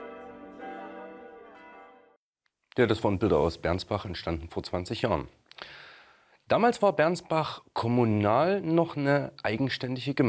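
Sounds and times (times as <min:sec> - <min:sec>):
new church bells pealing together over Bernsbach by the Spiegelwald: 0:00.0 - 0:02.1
speech: 0:02.8 - 0:05.8, 0:06.5 - 0:10.2.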